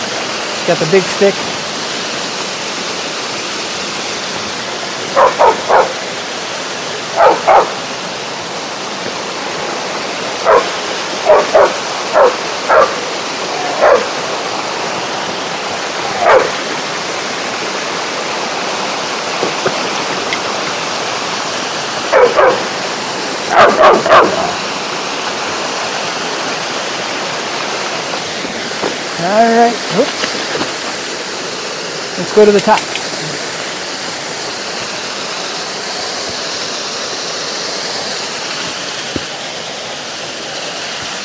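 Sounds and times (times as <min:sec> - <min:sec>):
flowing water rushing: 0:00.0 - 0:41.2
speech: 0:00.7 - 0:01.6, 0:32.4 - 0:33.0
dog barking: 0:05.1 - 0:06.0, 0:07.2 - 0:07.8, 0:10.4 - 0:13.0, 0:13.6 - 0:14.2, 0:16.2 - 0:16.6, 0:22.1 - 0:22.7, 0:23.5 - 0:24.6.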